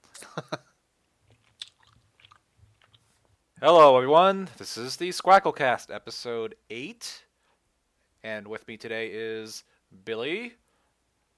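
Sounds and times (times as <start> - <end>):
wet chewing with crunchy bites: 1.3 - 3.2
speech: 3.6 - 7.2, 8.2 - 10.6.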